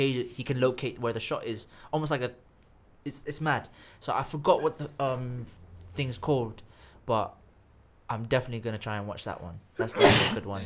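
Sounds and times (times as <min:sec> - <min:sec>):
speech: 0:00.0 - 0:07.4, 0:08.1 - 0:10.6
person sneezing: 0:09.8 - 0:10.4.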